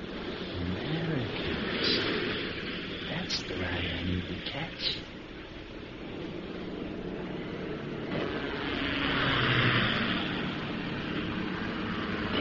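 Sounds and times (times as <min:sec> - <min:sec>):
helicopters approaching with engine and rotor roar: 0:00.0 - 0:12.3
speech: 0:04.5 - 0:05.1.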